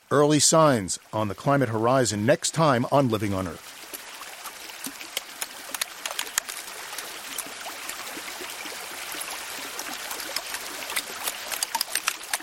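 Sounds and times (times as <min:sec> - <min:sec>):
soft watery wash: 0:00.0 - 0:12.4
speech: 0:00.1 - 0:03.8
melting glacier ice at Columbia Glacier in Alaska crackling and popping: 0:04.7 - 0:08.0, 0:09.7 - 0:12.4.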